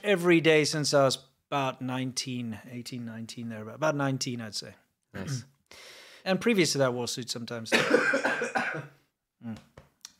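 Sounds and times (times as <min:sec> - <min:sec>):
speech: 0:00.0 - 0:09.8
person coughing: 0:07.7 - 0:09.0.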